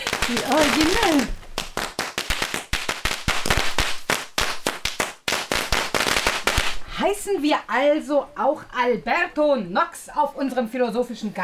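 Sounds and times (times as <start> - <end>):
firecracker bangs at an outdoor garden party: 0.0 - 7.2
speech: 0.3 - 1.4, 7.0 - 11.4.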